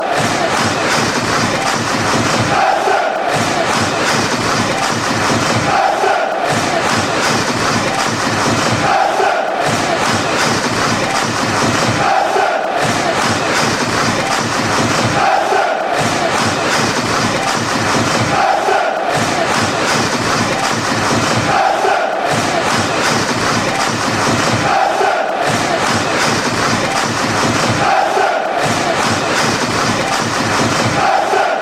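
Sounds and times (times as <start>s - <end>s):
crowd clapping: 0.0s - 31.6s
laughter: 0.0s - 31.6s.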